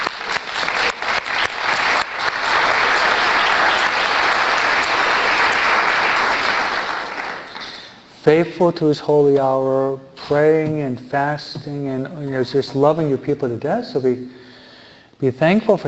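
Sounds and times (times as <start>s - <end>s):
audience applause in a parish: 0.0s - 8.0s
speech: 8.2s - 14.4s, 15.2s - 15.8s.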